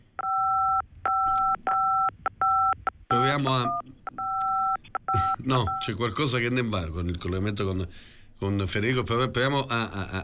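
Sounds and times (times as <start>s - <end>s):
phone keypad tones during call: 0.2s - 5.9s
speech: 3.2s - 3.9s, 5.1s - 10.2s.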